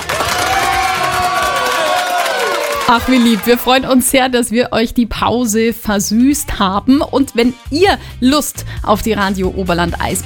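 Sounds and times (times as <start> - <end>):
schoolchildren and teachers at a school cheering with high-pitched shouts and whoops: 0.0 - 3.5
speech: 2.9 - 10.2.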